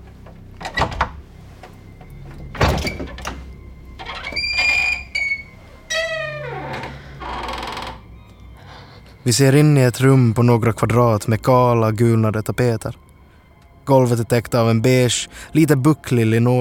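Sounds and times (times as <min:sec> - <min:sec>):
creaking, squealing hinges of a narrow door: 0:00.1 - 0:09.2
narrow door rattling and scraping as it swings open: 0:00.6 - 0:08.1
speech: 0:09.2 - 0:13.0, 0:13.9 - 0:16.6.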